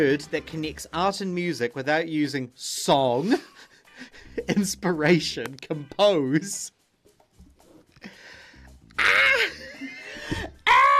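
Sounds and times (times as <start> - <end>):
speech: 0.0 - 6.8
voice imitating a screaming beaver: 9.0 - 9.6.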